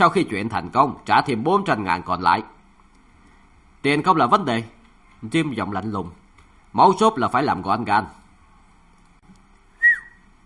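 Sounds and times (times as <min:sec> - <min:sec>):
speech: 0:00.0 - 0:02.6, 0:03.8 - 0:08.2
man whistling one short sharp high note: 0:09.8 - 0:10.3.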